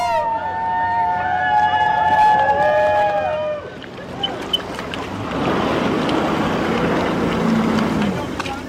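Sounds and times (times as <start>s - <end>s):
several jet ski engines whining: 0.0s - 8.6s
rush of water spray from jet skis: 4.0s - 8.6s.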